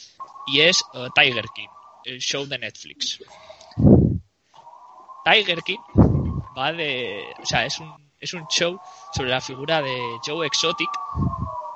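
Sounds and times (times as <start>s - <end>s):
speech: 0.0s - 3.9s, 5.2s - 6.0s, 6.6s - 11.4s
police convoy sirens wailing outside: 0.5s - 2.6s, 5.3s - 11.7s.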